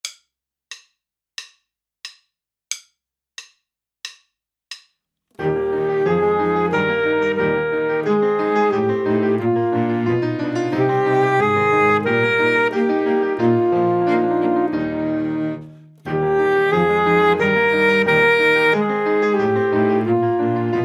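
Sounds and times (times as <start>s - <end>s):
full saxophone section playing a chorale: 5.4s - 10.1s, 10.7s - 20.8s.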